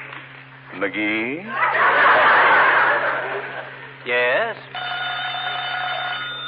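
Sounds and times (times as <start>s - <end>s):
speech: 0.9s - 1.9s
laughter: 1.5s - 4.1s
telephone bell ringing: 4.7s - 6.4s.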